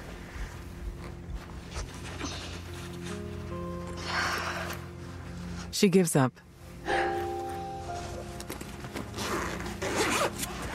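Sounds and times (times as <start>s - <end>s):
fabric rustling: 0.0s - 5.8s, 6.5s - 10.7s
zipper on a laptop case being pulled open: 1.0s - 3.2s, 8.0s - 10.7s
speech: 5.8s - 6.5s.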